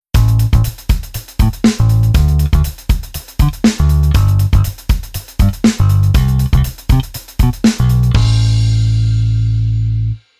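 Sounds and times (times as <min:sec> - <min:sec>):
bass arrangement: 0:00.2 - 0:00.8, 0:01.4 - 0:02.8, 0:03.4 - 0:04.8, 0:05.4 - 0:10.2.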